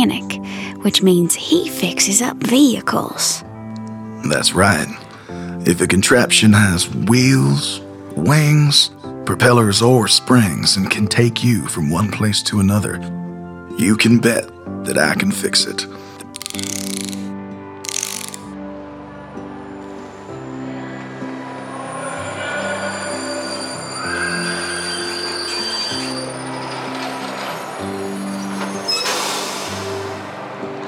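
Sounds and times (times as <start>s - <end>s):
speech: 0.0s - 3.5s, 4.2s - 5.0s, 5.6s - 13.2s, 13.8s - 16.7s
train rumbling and squealing at a train station: 20.4s - 30.8s
short bursts of hissing train steam: 29.0s - 30.3s.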